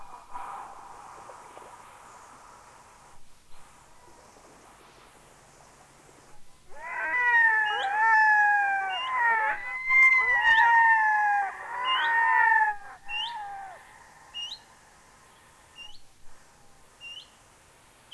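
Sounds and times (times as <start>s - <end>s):
Red-throated Loon wailing calls: 6.7s - 13.9s.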